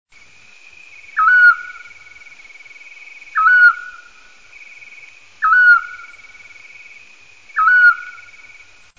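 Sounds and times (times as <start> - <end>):
scops owl song: 1.0 - 2.2, 3.2 - 4.2, 4.8 - 6.7, 7.5 - 8.5.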